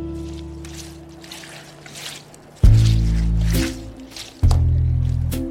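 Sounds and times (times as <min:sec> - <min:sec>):
loud splashing plunges of a mop into a bucket: 0:00.1 - 0:04.7
water dripping and swishing: 0:00.1 - 0:05.4
wet mop sloshing in a scrub bucket of dirty water: 0:00.1 - 0:05.4.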